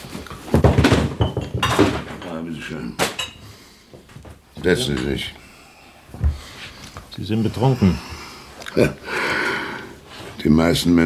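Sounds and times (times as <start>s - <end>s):
objects being shuffled and set down as a chair is cleared: 0.0s - 4.4s
speech: 2.4s - 3.1s, 4.6s - 5.4s, 7.2s - 8.1s, 8.8s - 9.1s, 10.4s - 11.0s.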